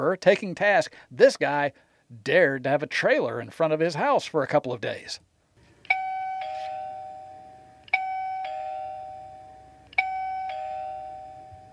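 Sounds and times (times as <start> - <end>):
speech: 0.0 - 5.3
video doorbell two-note ding-dong chime ringing: 5.9 - 11.7.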